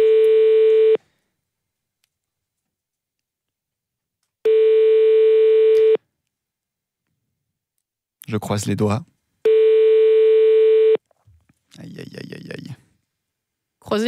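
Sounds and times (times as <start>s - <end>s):
buzzing ringback tone of a telephone call being placed again: 0.0s - 1.0s, 4.5s - 6.0s, 9.5s - 11.0s
speech: 8.4s - 9.2s, 11.8s - 12.8s, 13.8s - 14.0s.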